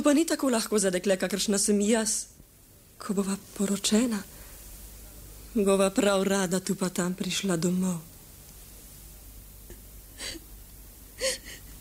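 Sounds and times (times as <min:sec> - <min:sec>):
speech: 0:00.0 - 0:02.4, 0:03.0 - 0:04.4, 0:05.5 - 0:08.1
person sobbing with whimpering: 0:10.2 - 0:10.5, 0:11.2 - 0:11.7.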